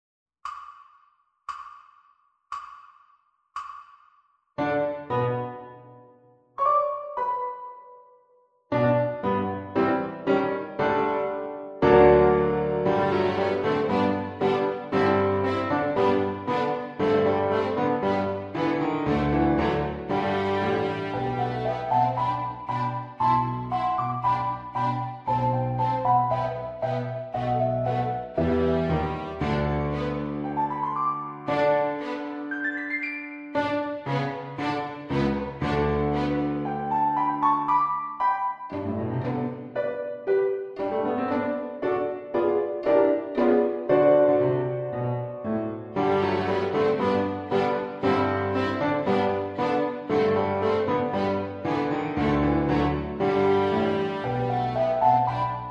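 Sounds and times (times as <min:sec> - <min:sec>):
piano in a backing track: 0:04.6 - 0:55.6
violin in a backing track: 0:11.8 - 0:37.2, 0:38.7 - 0:40.1, 0:45.9 - 0:55.6.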